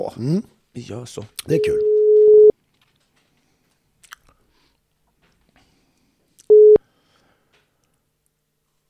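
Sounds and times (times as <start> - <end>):
speech: 0.0 - 1.9
telephone ringback tone while calling: 1.6 - 2.5, 6.5 - 6.8.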